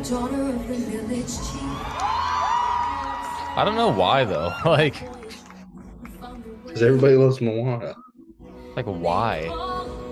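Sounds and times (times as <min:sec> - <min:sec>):
speech: 0:00.1 - 0:02.0, 0:03.6 - 0:05.3, 0:06.8 - 0:08.0, 0:08.8 - 0:09.7
large audience at a film screening cheering loudly: 0:01.4 - 0:05.1.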